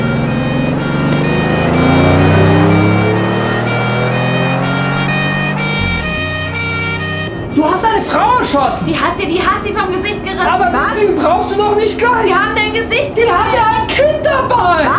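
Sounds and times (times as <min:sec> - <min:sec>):
fleeing getaway car engine revving as it accelerates: 0:00.0 - 0:14.9
speech: 0:08.4 - 0:14.9.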